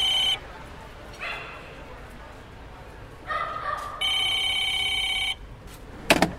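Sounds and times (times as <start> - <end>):
old-fashioned street telephone ringing: 0.0 - 0.4, 4.0 - 5.4
murmur of a crowd at a busy spot in Budapest: 0.0 - 5.3.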